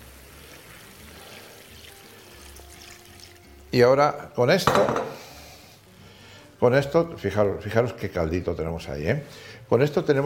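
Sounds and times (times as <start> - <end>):
water pouring into a cooking pan with white wine: 0.0 - 4.1
speech: 3.7 - 5.2, 6.6 - 10.2.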